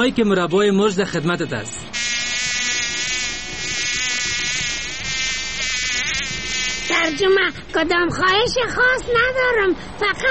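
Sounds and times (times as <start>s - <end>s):
speech: 0.0s - 2.1s, 7.0s - 10.2s
fly buzzing: 2.0s - 7.4s.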